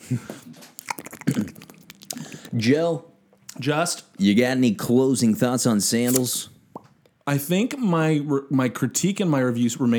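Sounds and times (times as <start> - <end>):
speech: 0.1 - 0.6, 2.6 - 6.6, 7.2 - 9.9
voice imitating a dripping leaky faucet with wet mouth clicks and smacks: 0.6 - 2.6.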